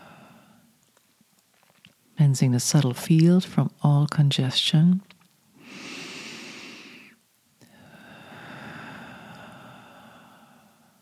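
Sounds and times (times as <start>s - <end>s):
slow deep breathing in and out: 0.0s - 0.8s, 5.6s - 11.0s
speech: 2.2s - 5.1s.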